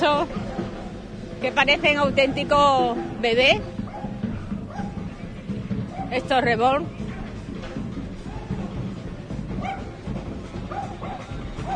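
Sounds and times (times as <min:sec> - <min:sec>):
speech: 0:00.0 - 0:00.4, 0:01.4 - 0:03.8, 0:06.1 - 0:07.0
noisy background: 0:00.0 - 0:11.7
excited dog barking and yelping: 0:00.2 - 0:01.0, 0:03.9 - 0:05.1, 0:05.9 - 0:06.2, 0:09.6 - 0:10.0, 0:10.7 - 0:11.7.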